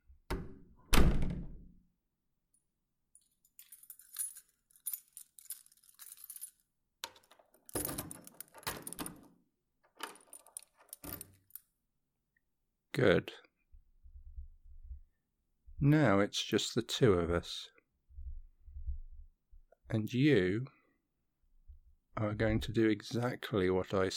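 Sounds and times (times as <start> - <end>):
door thudding shut: 0.3 - 1.7
metallic jangling of keys: 3.2 - 9.3, 10.0 - 11.7
lock being turned, clicking and rattling: 3.5 - 11.7
speech: 13.0 - 13.5, 15.8 - 17.7, 19.9 - 20.8, 22.2 - 24.1.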